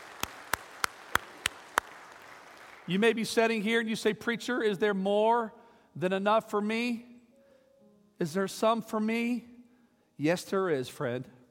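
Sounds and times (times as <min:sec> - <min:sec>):
church congregation clapping in praise: 0:00.0 - 0:03.5
speech: 0:02.9 - 0:07.1, 0:08.2 - 0:09.5, 0:10.2 - 0:11.4.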